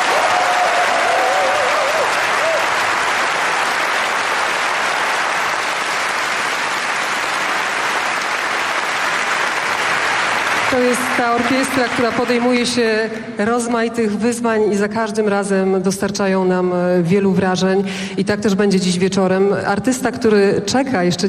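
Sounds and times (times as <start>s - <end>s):
audience applause for a national symphony orchestra at a live concert: 0.0s - 12.9s
speech: 10.8s - 21.2s.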